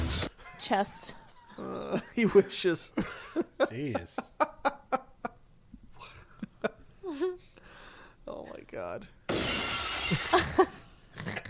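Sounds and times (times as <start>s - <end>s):
laughter: 0.3s - 5.4s, 6.0s - 7.4s
speech: 0.7s - 4.5s, 8.6s - 9.2s, 10.1s - 11.4s
glass shattering: 9.3s - 10.8s.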